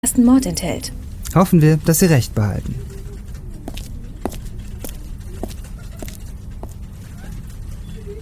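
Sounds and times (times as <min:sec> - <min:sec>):
low continuous rumble: 0:00.0 - 0:08.2
speech: 0:00.1 - 0:02.9
quick footsteps walking: 0:03.2 - 0:07.1.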